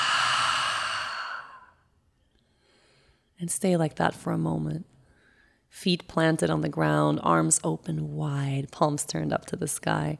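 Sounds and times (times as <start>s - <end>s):
deep exhale through an open mouth during a breathing exercise: 0.0s - 1.8s
speech: 3.4s - 4.9s, 5.7s - 10.1s.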